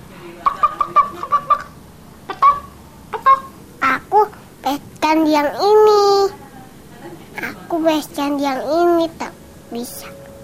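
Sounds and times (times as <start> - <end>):
hen clucking: 0.4 - 4.3
speech: 5.1 - 6.4, 7.7 - 10.2.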